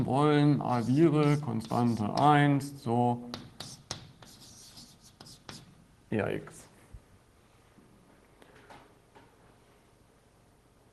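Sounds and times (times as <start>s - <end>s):
speech: 0.0s - 3.7s, 6.1s - 6.6s
writing on a surface: 0.6s - 2.4s, 3.3s - 5.8s.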